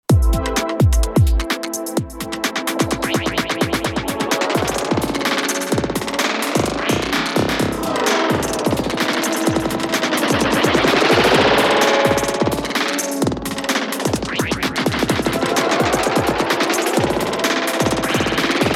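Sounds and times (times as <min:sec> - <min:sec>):
channel send tape delay effect: 0:00.2 - 0:18.7.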